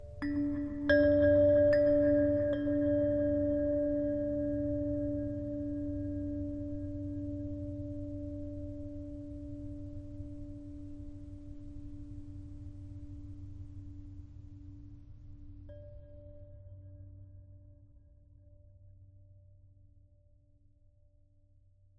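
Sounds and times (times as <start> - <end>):
low ambient abstract chimes: 0.0 - 10.4.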